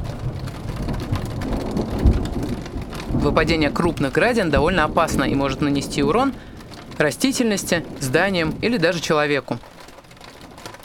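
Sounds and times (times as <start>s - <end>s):
low rolling thunder rumble during a storm: 0.0s - 10.8s
rain falling during a storm: 0.0s - 10.8s
speech: 3.2s - 9.7s.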